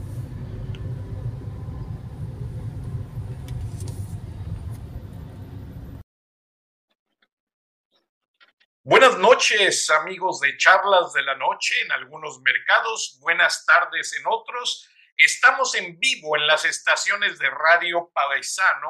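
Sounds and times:
buses and city traffic rumbling on Calzada Tlalpan: 0:00.0 - 0:06.0
speech: 0:08.8 - 0:18.8.

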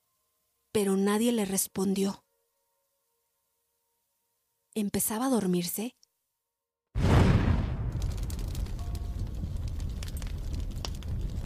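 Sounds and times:
speech: 0:00.7 - 0:02.2, 0:04.8 - 0:06.0
dynamite explosion blowing open a safe: 0:07.0 - 0:11.4.

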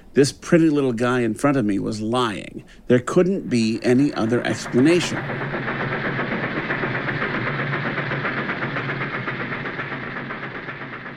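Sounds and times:
speech: 0:00.2 - 0:05.9
train rolling along rails with rhythmic clatter: 0:03.6 - 0:11.1.

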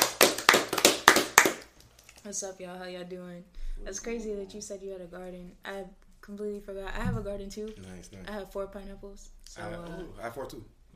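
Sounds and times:
hands clapping: 0:00.0 - 0:02.3
speech: 0:02.3 - 0:10.8.

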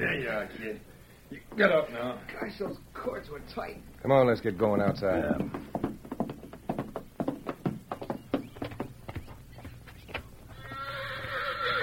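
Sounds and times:
speech: 0:00.1 - 0:05.9
stallion hoof clatter in a lean-to: 0:04.1 - 0:11.8
knocks: 0:04.8 - 0:09.7
stallion neighing and whinnying in a lean-to: 0:10.6 - 0:11.8.

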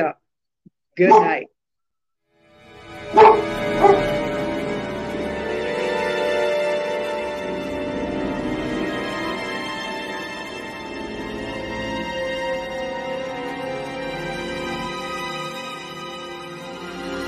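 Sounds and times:
speech: 0:00.0 - 0:00.2, 0:01.0 - 0:01.5, 0:03.2 - 0:04.0
dog barking outside: 0:01.0 - 0:01.4, 0:03.1 - 0:04.2
steady tonal drone: 0:02.8 - 0:15.8.

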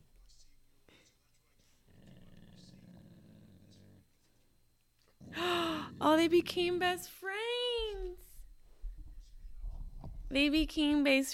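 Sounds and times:
dogs growling together: 0:01.8 - 0:04.1, 0:05.2 - 0:06.6
speech: 0:06.2 - 0:07.3, 0:10.3 - 0:11.3.

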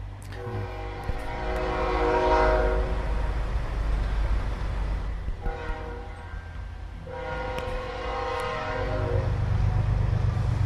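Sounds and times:
low rumble of freight train passing: 0:00.0 - 0:10.6
freight train horn blasts: 0:00.4 - 0:03.2, 0:05.3 - 0:09.7.

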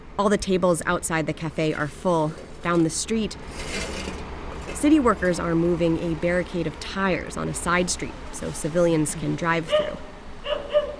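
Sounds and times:
soft outdoor hum: 0:00.0 - 0:10.9
speech: 0:00.2 - 0:04.0, 0:04.8 - 0:10.1
dog barking outdoors on a city street: 0:09.7 - 0:10.9.

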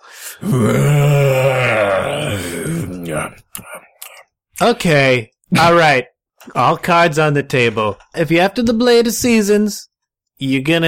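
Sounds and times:
long loud yawn turning into a warbling battle-cry-like yell: 0:00.2 - 0:03.8
speech: 0:00.4 - 0:01.2, 0:04.6 - 0:10.8.

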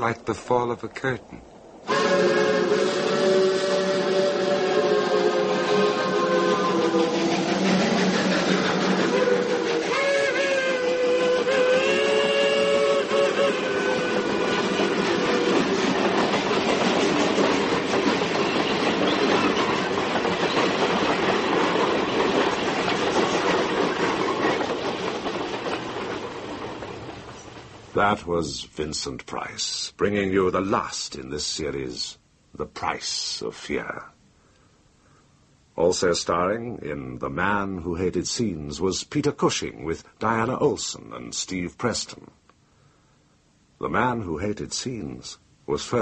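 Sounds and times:
speech: 0:00.0 - 0:01.5, 0:28.2 - 0:34.1, 0:35.8 - 0:42.4, 0:43.8 - 0:45.9
rumbling train wheels: 0:01.7 - 0:29.0
train whistle wailing: 0:01.8 - 0:07.8, 0:08.6 - 0:16.2.

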